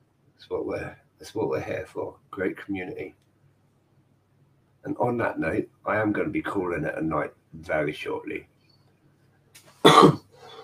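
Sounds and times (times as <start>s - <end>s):
speech: 0.4s - 3.3s, 4.8s - 8.5s, 9.8s - 10.2s
forceful cough with throaty clearing: 9.8s - 10.6s
soft breath: 10.3s - 10.6s.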